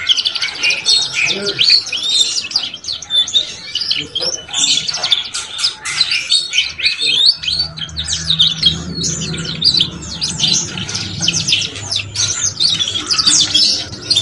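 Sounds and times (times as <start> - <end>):
Belgian canary song with high twittering trills: 0.0 - 14.2
low hum: 7.1 - 14.2.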